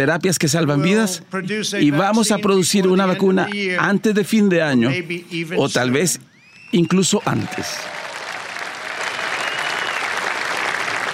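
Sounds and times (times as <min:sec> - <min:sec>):
speech: 0:00.0 - 0:08.0
audience applause after a political speech: 0:07.1 - 0:11.1.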